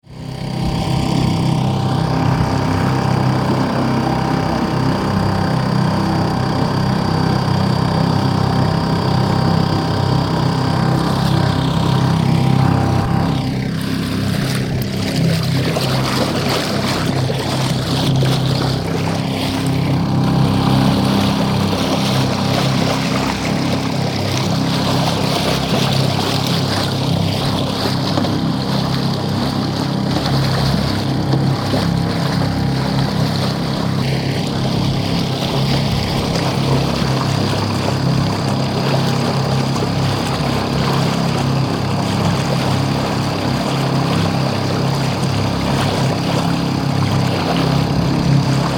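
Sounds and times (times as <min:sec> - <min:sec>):
outboard motor: 0:00.0 - 0:48.7.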